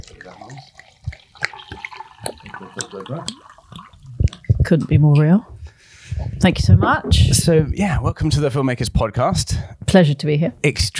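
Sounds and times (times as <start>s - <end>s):
glass clinking: 0.0s - 4.1s
water pouring into a glass: 0.0s - 5.0s
speech: 2.9s - 3.5s, 4.7s - 5.5s, 6.4s - 10.9s.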